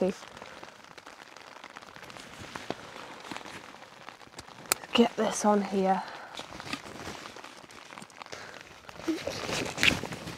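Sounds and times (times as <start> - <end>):
speech: 0.0 - 0.4, 5.0 - 6.1
steady rain pattering across surfaces and tree foliage: 0.0 - 10.3.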